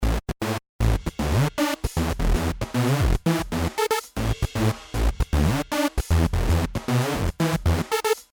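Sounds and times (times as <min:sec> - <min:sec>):
bass ghost notes: 0:00.2 - 0:07.8.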